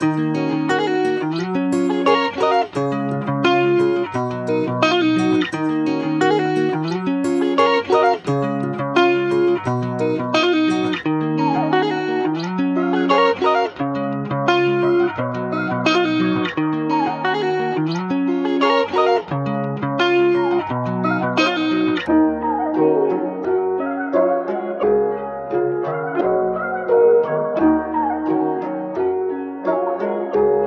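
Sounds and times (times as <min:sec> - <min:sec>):
guitar loops in E minor: 0:00.0 - 0:30.6.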